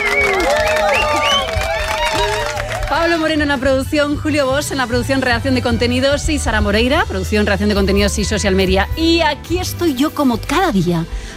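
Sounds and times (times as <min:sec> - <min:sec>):
loud cheering and whooping voices: 0:00.0 - 0:03.4
crowd applauding for a radio program's sound technician: 0:00.0 - 0:03.6
speech: 0:03.0 - 0:11.3.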